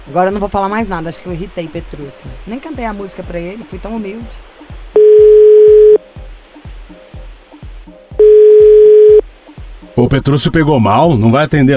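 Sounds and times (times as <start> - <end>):
speech: 0.1 - 4.6, 10.1 - 11.7
telephone tone beeps after a dropped call: 5.0 - 6.0, 8.2 - 9.2.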